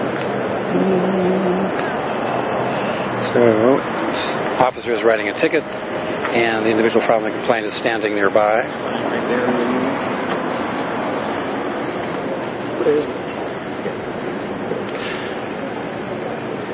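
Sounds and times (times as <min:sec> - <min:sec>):
bus engines and traffic rumbling at a downtown bus transit center: 0:00.0 - 0:16.7
indistinct voices murmuring: 0:00.0 - 0:16.7
speech: 0:00.7 - 0:01.8, 0:03.3 - 0:10.1, 0:12.8 - 0:13.2.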